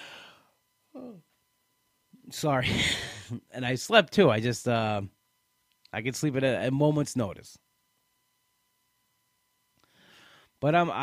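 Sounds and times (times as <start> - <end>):
person yawning: 0.9 - 1.2
speech: 2.3 - 5.2, 5.9 - 7.6, 10.6 - 11.0.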